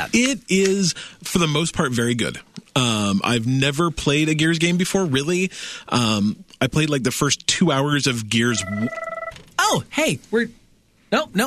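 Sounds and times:
speech: 0.0 - 9.1, 9.7 - 11.4
phone ringtone with swooping downward tones: 8.5 - 9.4.

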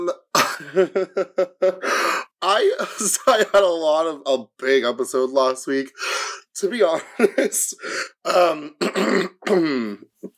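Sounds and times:
person clearing throat: 0.0 - 0.8, 8.3 - 10.3
speech: 0.0 - 10.3.

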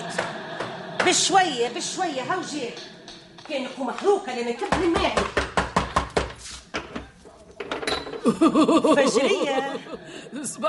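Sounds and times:
speech: 1.0 - 5.4, 8.2 - 10.6
firm raps on a door: 4.7 - 7.0
laughter: 8.2 - 10.6.

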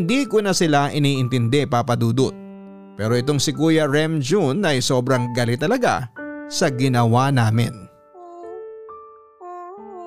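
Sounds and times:
speech: 0.0 - 2.4, 3.0 - 7.8
baby crying in high wavering wails: 8.2 - 8.6, 9.4 - 10.0.

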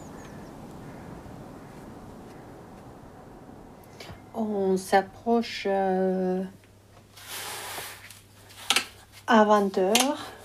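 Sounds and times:
bird giving short high calls: 0.0 - 4.4
steady broad outdoor rumble: 0.0 - 7.0
speech: 4.1 - 6.6, 9.3 - 10.3.

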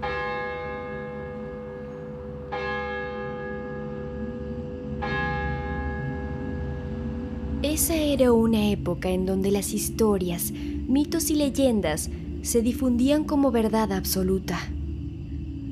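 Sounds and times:
church bells tolling: 0.0 - 8.4
speech: 7.7 - 14.8.

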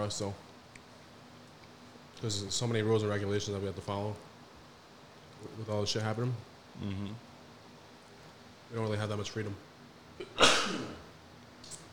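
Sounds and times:
speech: 0.0 - 0.4, 2.2 - 4.3, 5.4 - 7.3, 8.7 - 9.7, 10.3 - 11.0
person sneezing: 10.2 - 11.1.

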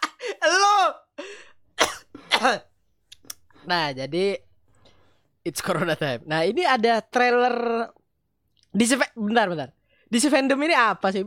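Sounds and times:
person laughing: 0.0 - 0.7
person coughing roughly: 1.8 - 2.7
speech: 2.4 - 2.7, 3.6 - 4.5, 5.4 - 8.0, 8.7 - 11.2.

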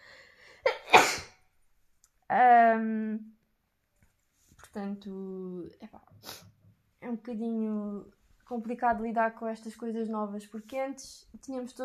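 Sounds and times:
woman sneezing: 0.7 - 1.4
speech: 4.8 - 6.5, 7.1 - 11.8.

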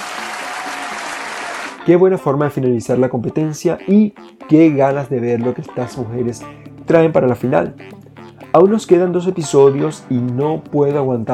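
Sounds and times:
dense applause from many hands clapping: 0.0 - 1.8
speech: 1.8 - 11.3.

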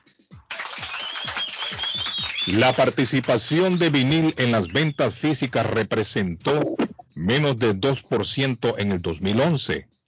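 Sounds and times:
crowd applause: 0.5 - 3.8
speech: 2.5 - 10.0.

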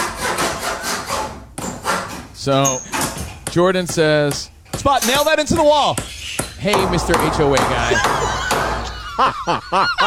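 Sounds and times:
hand saw cutting wood: 0.0 - 2.3
speech: 2.4 - 2.9, 3.6 - 8.4, 9.2 - 10.0
laughter: 7.5 - 10.0.

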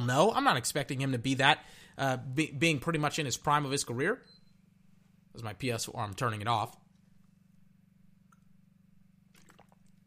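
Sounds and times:
speech: 0.1 - 4.4, 5.4 - 6.8
person taking a swig of water: 9.3 - 10.0.

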